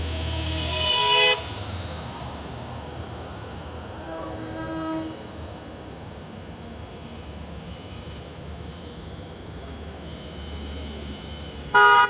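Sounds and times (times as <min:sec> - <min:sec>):
car horns on a busy street: 0:00.2 - 0:01.5, 0:04.1 - 0:05.2, 0:11.6 - 0:12.0.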